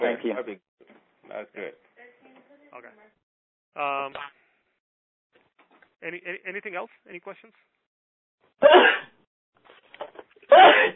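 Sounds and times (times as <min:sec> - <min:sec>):
speech: 0:00.2 - 0:00.7, 0:01.3 - 0:01.9, 0:02.7 - 0:04.4, 0:06.0 - 0:07.8, 0:08.6 - 0:09.1
person sneezing: 0:08.6 - 0:09.1, 0:10.5 - 0:10.9.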